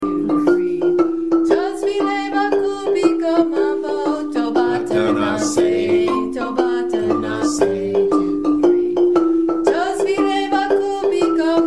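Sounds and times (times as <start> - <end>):
vocal line: 0.0 - 11.6.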